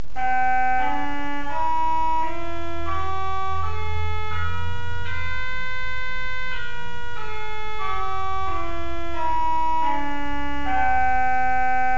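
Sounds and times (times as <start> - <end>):
organ hautbois reed pipes: 0.2 - 11.9.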